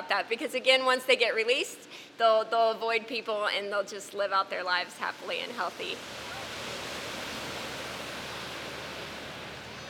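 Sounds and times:
speech: 0:00.1 - 0:06.4
ocean waves washing onto a beach: 0:04.7 - 0:09.8.

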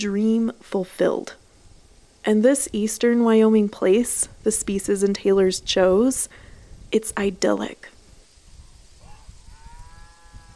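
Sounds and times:
speech: 0:00.0 - 0:01.4, 0:02.2 - 0:07.9
milk cow mooing on rolling rural farmland in eastern Wyoming: 0:09.0 - 0:10.5.

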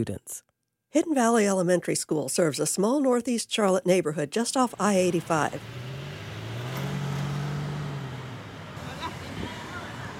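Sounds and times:
speech: 0:00.0 - 0:05.8
outdoor road noise: 0:04.6 - 0:10.1
vehicle engine humming in school drop-off line: 0:04.7 - 0:10.1.

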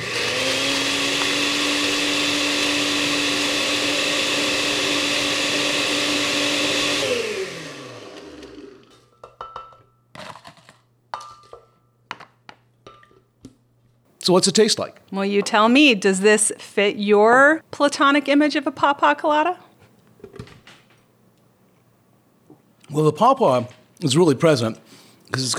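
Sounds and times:
blender crushing ice for a drink: 0:00.0 - 0:09.1
glass clinks and light knocks: 0:09.1 - 0:10.0
speech: 0:14.3 - 0:19.6, 0:22.9 - 0:25.5.

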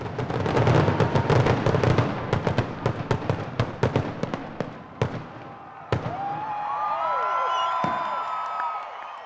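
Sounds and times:
fireworks display crackling booms: 0:00.0 - 0:06.7, 0:07.8 - 0:08.2
whistling, squealing rockets: 0:00.0 - 0:06.7, 0:07.5 - 0:09.2.

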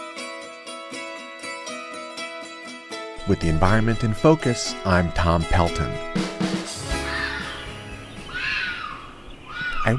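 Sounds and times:
speech: 0:03.3 - 0:06.2
red fox mating shrieks in Baltimore: 0:06.9 - 0:07.6, 0:08.3 - 0:09.9.

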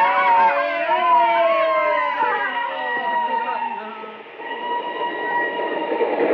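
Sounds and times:
train rumbling along tracks: 0:00.0 - 0:06.3
voices: 0:00.0 - 0:06.3
whining tonal squeals of train: 0:01.3 - 0:06.3.

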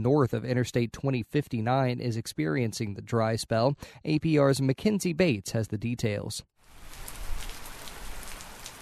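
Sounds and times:
speech: 0:00.0 - 0:06.5
steady rain falling in northern Alabama: 0:06.6 - 0:08.7.

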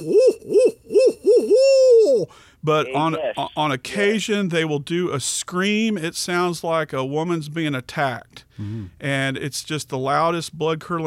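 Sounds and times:
speech: 0:00.0 - 0:01.0, 0:02.6 - 0:11.0
barred owl hooting: 0:00.0 - 0:02.3.

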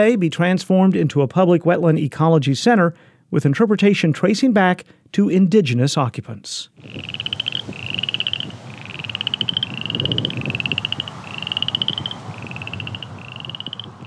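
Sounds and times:
speech: 0:00.0 - 0:07.8
crawfish frogs croaking at a preserve on a sunny warm late afternoon: 0:06.8 - 0:14.0
low rumbling outdoor background: 0:06.8 - 0:14.0.

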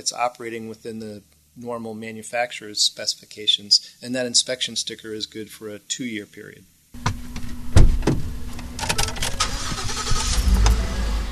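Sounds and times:
speech: 0:00.0 - 0:07.1
thump inside a car: 0:07.0 - 0:08.3
rattling inside a car: 0:07.0 - 0:11.0
car engine hum and rumble inside a car driving across town: 0:07.0 - 0:11.3.

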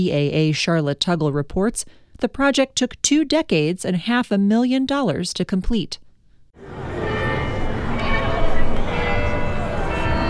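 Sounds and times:
speech: 0:00.0 - 0:06.0
outdoor noise: 0:00.0 - 0:10.2
courthouse clock tower bells chiming: 0:06.8 - 0:10.2.

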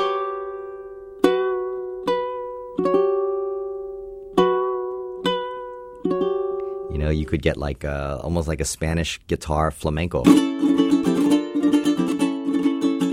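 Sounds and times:
ukulele played to imitate a Japanese koto: 0:00.0 - 0:07.6, 0:10.2 - 0:13.1
speech: 0:02.8 - 0:03.2, 0:07.0 - 0:11.0.

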